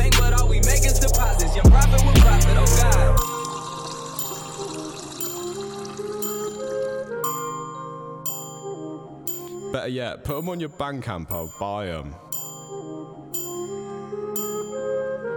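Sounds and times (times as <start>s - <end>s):
low-quality compressed rip of a song with vocals: 0.0s - 7.4s, 9.6s - 12.3s, 15.2s - 15.3s
speech: 9.9s - 12.3s.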